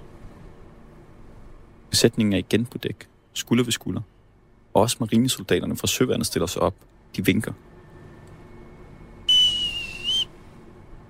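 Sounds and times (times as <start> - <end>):
quiet hum: 0.0 - 11.0
speech: 2.0 - 4.1, 4.8 - 7.7
piercing whistle blast signalling end of parade formation on a navy ship deck: 9.2 - 10.4.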